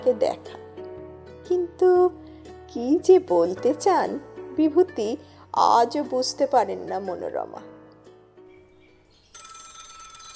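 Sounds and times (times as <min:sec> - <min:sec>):
speech: 0:00.0 - 0:00.6, 0:01.4 - 0:07.7
telephone ringing with an electronic tonal ring: 0:09.3 - 0:10.3.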